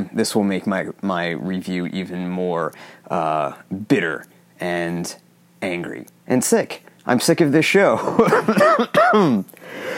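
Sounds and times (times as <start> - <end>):
speech: 0.2 - 9.9
heavy coughing: 8.1 - 9.9.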